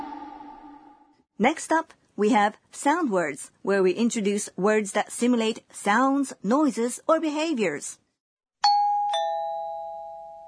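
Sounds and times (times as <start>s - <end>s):
speech: 1.4s - 8.0s
two-tone doorbell chime: 8.6s - 10.4s.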